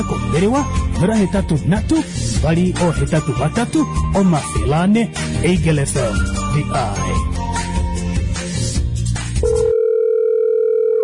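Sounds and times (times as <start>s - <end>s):
speech: 0.0s - 7.7s
busy music on an unanswered telephone call: 0.0s - 9.7s
steady telephone tone on an unanswered call: 9.4s - 11.0s.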